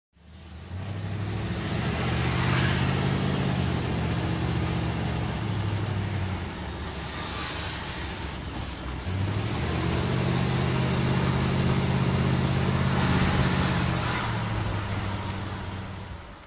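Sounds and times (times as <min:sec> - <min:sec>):
Facel FV3 car driving: 0:00.2 - 0:16.4.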